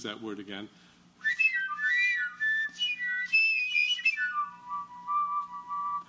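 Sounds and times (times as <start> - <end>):
speech: 0.0 - 0.9
simple homemade whistle instrument playing floating bird-like tones: 1.2 - 6.0.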